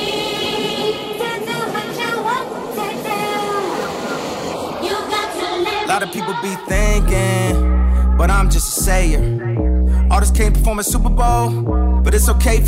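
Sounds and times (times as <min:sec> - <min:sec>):
train wheels rumbling on track: 0:00.1 - 0:05.9
speech: 0:06.1 - 0:07.7, 0:08.2 - 0:12.6.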